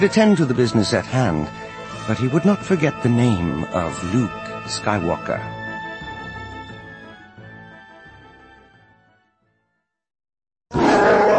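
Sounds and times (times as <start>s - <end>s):
speech: 0.0s - 5.6s
Wookiee roaring in rage: 10.7s - 11.3s.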